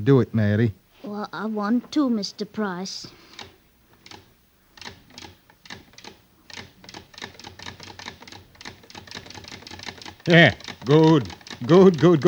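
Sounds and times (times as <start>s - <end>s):
speech: 0.0s - 3.4s, 10.3s - 12.2s
sewing machine stitching a chain: 4.8s - 12.2s.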